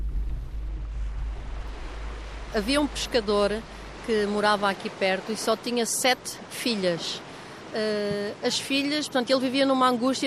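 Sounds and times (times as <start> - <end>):
deep rumble of wind: 0.0 - 4.6
ocean waves washing onto a beach: 0.0 - 10.2
speech: 2.5 - 10.2.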